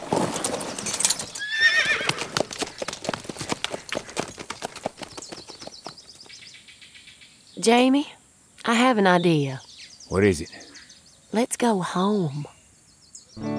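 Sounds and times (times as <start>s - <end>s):
horse hooves clip-clopping as a man rides away: 0.0s - 6.5s
horse whinnying: 0.7s - 4.2s
speech: 7.6s - 10.6s, 11.3s - 12.5s.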